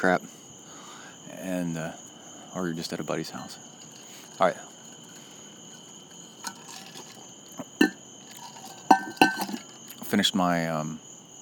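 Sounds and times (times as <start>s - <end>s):
speech: 0.0s - 0.4s, 1.4s - 3.8s, 4.4s - 4.7s, 10.1s - 11.1s
ice cubes in wine and water clinking in a vacuum-sealed insulated cup: 6.4s - 7.2s, 7.8s - 9.7s.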